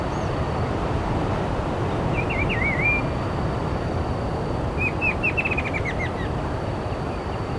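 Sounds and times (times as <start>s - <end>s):
constant low background rumble: 0.0s - 7.5s
bird calls with wavering whistled chirp and rapid descending twitters: 2.1s - 3.1s, 4.8s - 7.5s.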